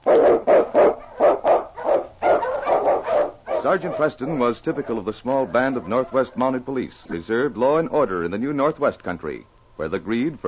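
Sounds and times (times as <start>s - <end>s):
husky sled dogs barking: 0.0s - 6.8s
speech: 3.6s - 10.4s.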